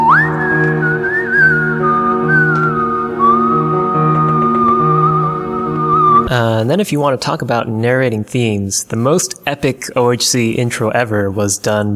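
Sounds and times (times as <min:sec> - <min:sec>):
humming musical backing with low held tones: 0:00.0 - 0:06.3
person whistling a melody: 0:00.0 - 0:06.3
speech: 0:06.7 - 0:11.9.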